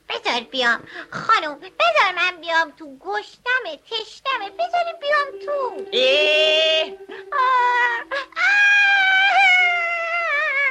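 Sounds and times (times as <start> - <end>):
speech: 0.4 - 8.9
storyteller imitating a whimpering wailing cry: 6.0 - 10.6.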